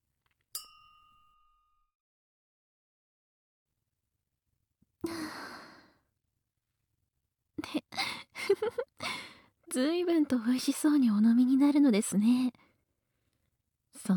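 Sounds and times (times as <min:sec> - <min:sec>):
glasses clinking in a toast: 0:00.6 - 0:01.4
breathy sigh: 0:05.0 - 0:06.0, 0:09.0 - 0:09.4
speech: 0:09.8 - 0:12.6, 0:14.0 - 0:14.1.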